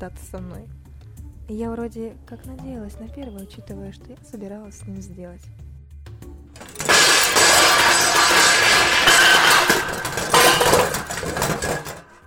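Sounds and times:
speech: 0.0 - 0.9, 1.5 - 5.6
heavy metal cabinet crashing down with clanging and rattling debris: 6.6 - 12.2.

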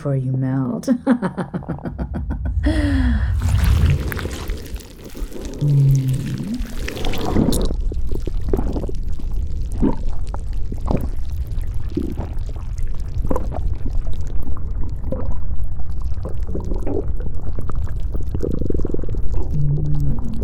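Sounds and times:
speech: 0.0 - 2.9, 5.6 - 6.4
laughter: 0.9 - 3.1
hungry stomach rumbling and gurgling: 1.8 - 20.4.

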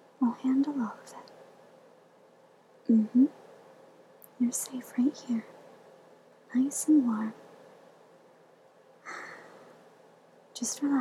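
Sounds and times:
speech: 0.2 - 1.3, 2.9 - 3.4, 4.4 - 5.6, 6.5 - 7.4, 10.6 - 11.0
slow deep breathing in and out: 9.0 - 9.9.

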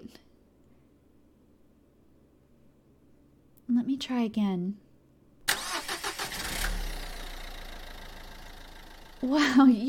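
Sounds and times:
speech: 3.8 - 4.8, 9.2 - 9.8
car engine cranking and idling after jump start: 5.5 - 9.8.

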